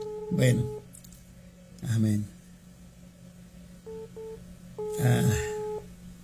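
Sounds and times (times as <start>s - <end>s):
telephone ringback beeps of call to radio office in Mapastepec: 0.0s - 0.8s, 3.9s - 5.9s
longer steady telephone line tone: 0.0s - 0.9s, 3.8s - 5.9s
speech: 0.3s - 0.8s, 1.8s - 2.4s, 5.0s - 5.5s
breathy noise on telephone line: 4.8s - 5.8s.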